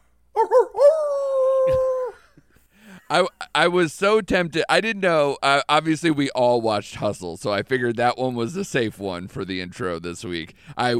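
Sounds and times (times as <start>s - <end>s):
man imitating a wolf howl: 0.4s - 2.3s
speech: 3.1s - 10.9s.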